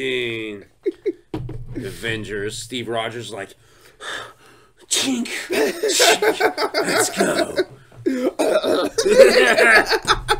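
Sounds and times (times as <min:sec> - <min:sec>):
speech: 0:00.0 - 0:01.0, 0:01.8 - 0:04.3, 0:04.9 - 0:10.2
laughter: 0:00.8 - 0:01.2, 0:05.5 - 0:10.3
person coughing harshly and throatily: 0:05.7 - 0:09.8.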